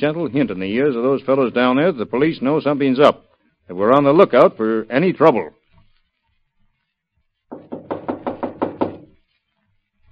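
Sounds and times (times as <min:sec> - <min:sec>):
speech: 0:00.0 - 0:05.6
firm knocking on a locked wooden door: 0:07.5 - 0:09.1.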